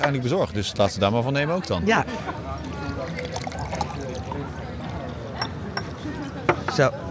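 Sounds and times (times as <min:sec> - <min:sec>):
speech: 0:00.0 - 0:02.5, 0:06.8 - 0:07.0
people talking quietly: 0:00.0 - 0:07.1
drink being poured in a steady liquid trickle: 0:02.6 - 0:04.6.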